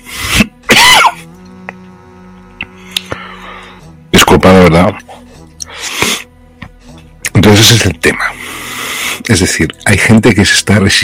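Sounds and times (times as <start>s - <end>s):
low steady hum: 0.0s - 11.0s
harsh coughing and throat clearing: 0.3s - 1.3s
speech: 4.3s - 5.2s, 7.4s - 8.6s, 9.3s - 11.0s.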